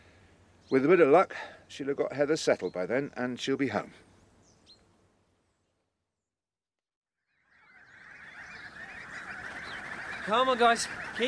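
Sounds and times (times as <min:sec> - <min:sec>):
speech: 0:00.7 - 0:04.1, 0:10.3 - 0:11.2
flock of geese honking: 0:07.3 - 0:11.2.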